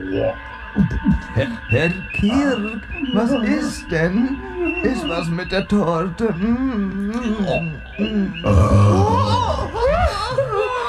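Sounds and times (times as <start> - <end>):
speech: 0.1 - 10.5
laughter: 0.8 - 10.8
guttural voiced vocal noises: 6.8 - 9.8
loud drawn-out belch: 8.4 - 9.5.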